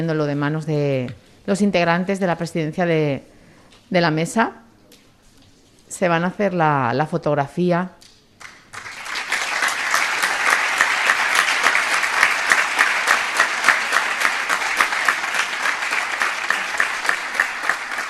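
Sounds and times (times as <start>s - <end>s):
speech: 0.0s - 3.3s, 3.9s - 4.6s, 5.9s - 8.0s
audience applause: 8.4s - 18.0s.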